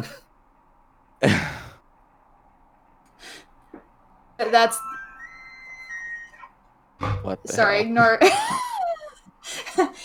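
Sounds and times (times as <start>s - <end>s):
speech: 0.0s - 0.2s, 4.4s - 4.9s, 7.3s - 8.7s
ringtone of an elk whistling call: 4.4s - 7.8s
laughter: 7.2s - 10.0s.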